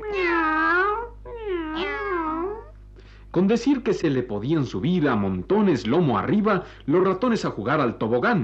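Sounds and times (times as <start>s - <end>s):
cat meowing: 0.0s - 2.7s
speech: 3.4s - 8.4s.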